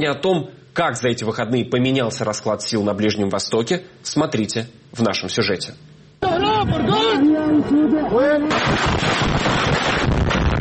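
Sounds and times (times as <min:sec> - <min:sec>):
speech: 0:00.0 - 0:09.5
people shouting: 0:06.2 - 0:07.9
powerful explosion in a city: 0:08.5 - 0:10.5.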